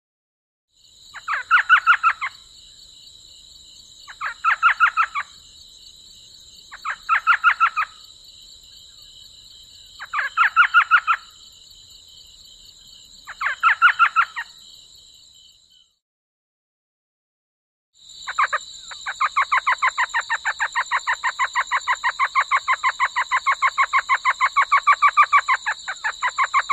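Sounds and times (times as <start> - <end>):
Elf owl chatter in a desert in the USA: 1.1 - 2.4, 4.0 - 5.4, 6.7 - 8.0, 10.0 - 11.4, 13.2 - 14.6, 18.2 - 26.7.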